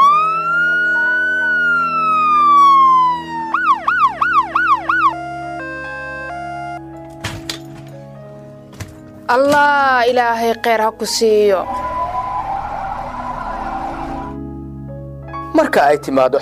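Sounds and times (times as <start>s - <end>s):
ambulance siren: 0.0s - 6.8s, 11.6s - 14.5s
speech: 9.3s - 11.8s, 15.7s - 16.4s.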